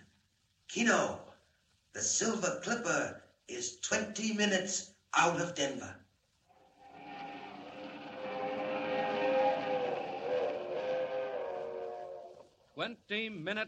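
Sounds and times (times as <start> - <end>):
speech: 0.7 - 1.3, 2.0 - 6.0, 12.8 - 13.6
streamliner train roaring through the Rockies at 80 miles an hour: 6.6 - 12.6.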